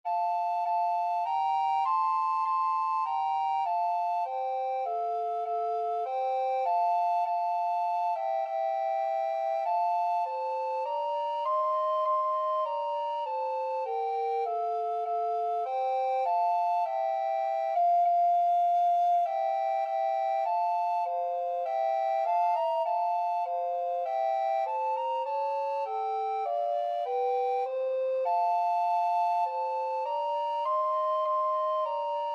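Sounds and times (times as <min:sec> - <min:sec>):
two alto recorders playing a duet: 0:00.1 - 0:32.3.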